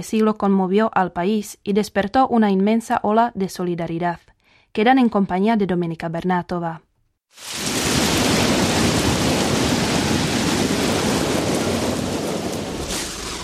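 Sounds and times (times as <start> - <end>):
speech: 0.0 - 7.8
deep rumbling undertone of thunderstorm: 7.4 - 13.4
heavy thunderstorm rain downpour: 7.4 - 13.4.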